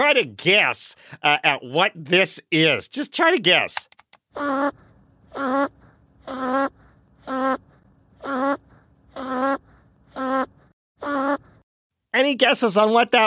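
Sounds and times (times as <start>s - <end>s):
speech: 0.0s - 8.6s, 12.2s - 13.2s
snoring sped up into high-pitched buzzy bursts: 4.4s - 11.6s.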